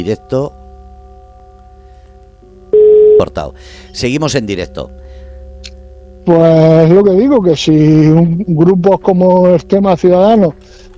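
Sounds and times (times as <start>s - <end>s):
speech: 0.0s - 0.6s, 3.2s - 5.0s, 6.3s - 10.9s
electronic telephone tone signalling an incoming call on a live phone line: 2.7s - 3.3s.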